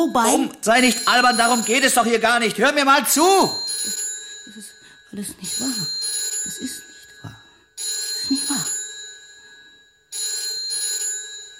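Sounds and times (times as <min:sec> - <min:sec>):
speech: 0:00.0 - 0:06.8
telephone ringing with an electronic trill: 0:00.7 - 0:11.5.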